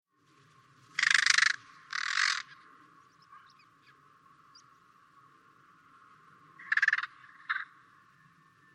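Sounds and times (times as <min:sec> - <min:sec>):
carrion crow giving harsh cawing calls: 0:01.0 - 0:02.6, 0:06.6 - 0:07.8.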